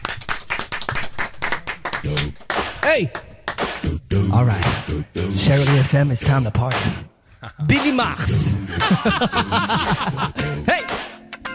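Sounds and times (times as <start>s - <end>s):
audience hand clapping at a live morning radio studio performance: 0.0s - 3.8s
speech: 2.0s - 11.0s
laughter: 7.4s - 10.8s.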